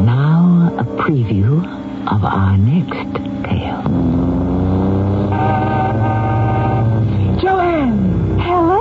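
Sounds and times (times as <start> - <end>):
sports car engine rumbling as it slows and pulls up: 0.1 - 8.7.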